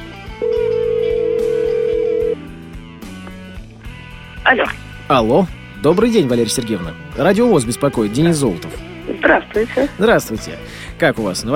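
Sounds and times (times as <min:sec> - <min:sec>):
quiet music: 0:00.0 - 0:11.5
telephone tone as a call is dialed: 0:00.4 - 0:02.4
speech: 0:04.5 - 0:11.5.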